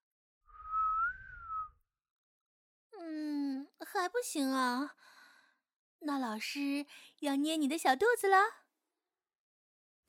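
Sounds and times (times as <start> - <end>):
person whistling a sustained note: 0.5 - 1.8
speech: 4.0 - 5.2, 6.0 - 8.6.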